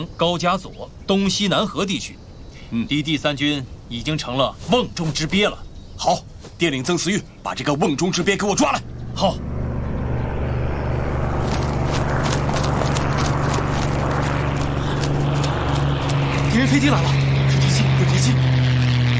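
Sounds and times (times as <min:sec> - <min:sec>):
speech: 0:00.0 - 0:09.5, 0:16.6 - 0:17.2
engine drone of approaching enemy aircraft: 0:07.3 - 0:19.1.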